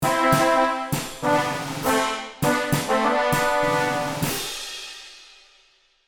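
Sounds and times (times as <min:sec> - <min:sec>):
ascending cartoon victory fanfare: 0:00.0 - 0:04.4.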